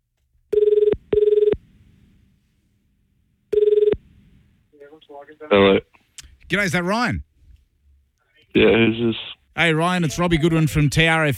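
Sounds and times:
telephone ringback tone on an outgoing call from a radio station: 0.5 - 1.6, 3.5 - 4.0
speech: 5.2 - 5.9, 6.5 - 7.3, 8.5 - 11.3.

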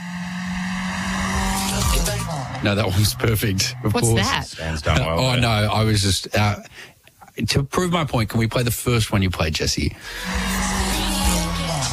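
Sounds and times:
Tirana car revving hard past a studio: 0.0 - 4.0
speech: 2.6 - 10.8.

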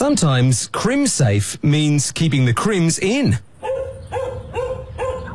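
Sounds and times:
speech: 0.1 - 3.5
dogs barking: 3.6 - 5.3.

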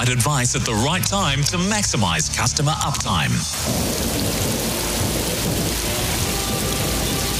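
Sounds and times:
speech: 0.0 - 4.5
heavy rain pouring: 2.5 - 7.3
deep thunder rumbling: 3.5 - 7.3.

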